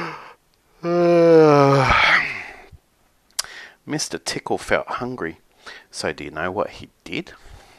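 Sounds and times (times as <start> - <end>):
person voicing exaggerated yawn: 0.0 - 2.7
speech: 4.0 - 7.5.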